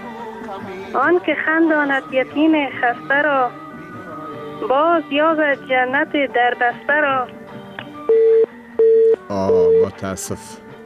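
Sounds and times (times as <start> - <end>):
speech: 0.6 - 3.6, 4.6 - 7.4, 9.3 - 10.6
telephone busy tone beeps after a dropped call: 8.1 - 10.0.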